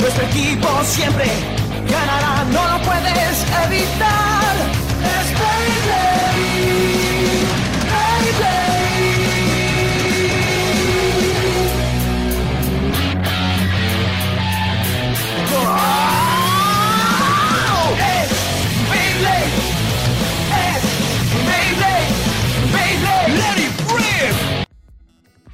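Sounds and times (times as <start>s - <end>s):
male vocalist shouting and belting in Spanish: 0.0s - 6.6s, 15.4s - 19.8s, 20.4s - 24.4s
driving band instrumentation of an anime opening theme song: 0.0s - 24.7s
speech: 0.3s - 6.7s.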